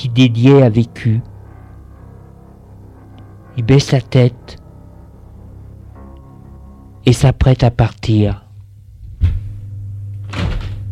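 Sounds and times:
speech: 0:00.0 - 0:01.3, 0:03.6 - 0:04.6, 0:07.1 - 0:08.4
low steady hum: 0:00.0 - 0:10.9
door opening thuds: 0:09.2 - 0:09.6, 0:10.3 - 0:10.9.

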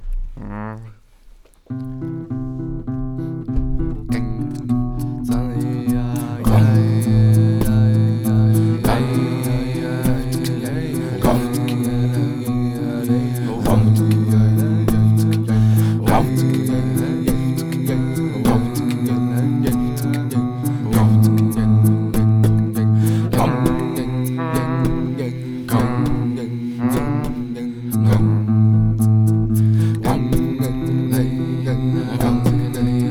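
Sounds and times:
guitar music: 0:01.7 - 0:33.1.

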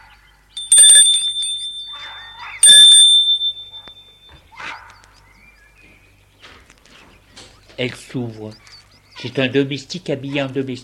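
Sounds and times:
doorbell ringing at the French door of an old ivy-covered mansion: 0:00.6 - 0:04.5
speech: 0:07.8 - 0:10.8.

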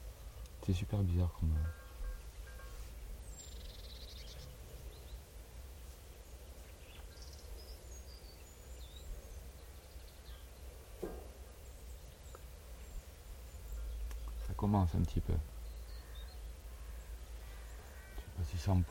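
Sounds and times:
common starlings calling: 0:00.0 - 0:05.4, 0:06.2 - 0:18.8
steady low outdoor rumble: 0:00.0 - 0:18.8
speech: 0:00.7 - 0:01.8, 0:14.9 - 0:15.6, 0:18.7 - 0:18.8.

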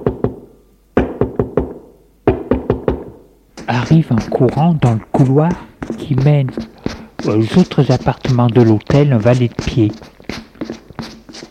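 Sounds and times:
knocking on a wooden door of a hotel apartment: 0:01.0 - 0:03.2
speech: 0:03.7 - 0:10.1.

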